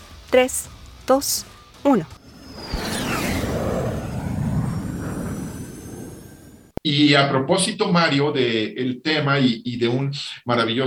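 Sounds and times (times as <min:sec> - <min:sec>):
speech: 0:00.3 - 0:02.2, 0:06.9 - 0:10.8
aircraft taking off: 0:02.2 - 0:06.8
thin descending whine: 0:02.2 - 0:06.8.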